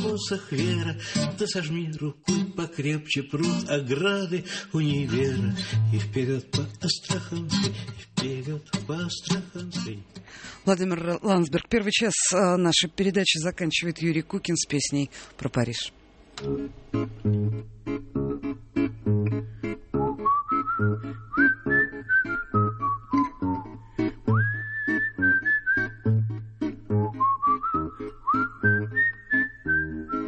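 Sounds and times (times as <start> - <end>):
rhythmic plucked strumming accompaniment: 0.0 - 3.9, 4.8 - 10.3, 16.4 - 30.2
speech: 0.0 - 18.6
person whistling a clear sliding melody: 20.0 - 26.2, 26.9 - 30.2.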